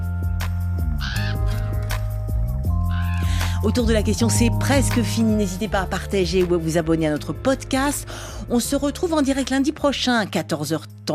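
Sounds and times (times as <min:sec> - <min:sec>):
music with low sustained tones and sharp percussive hits: 0:00.0 - 0:11.1
crow giving a harsh raspy caw: 0:01.0 - 0:01.9, 0:02.9 - 0:03.4
speech: 0:03.6 - 0:11.1.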